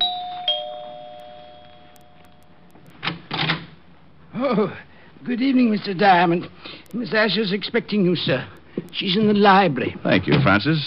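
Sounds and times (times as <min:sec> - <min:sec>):
apartment doorbell at 975 Park Avenue chiming: 0:00.0 - 0:02.7
speech: 0:04.4 - 0:10.8.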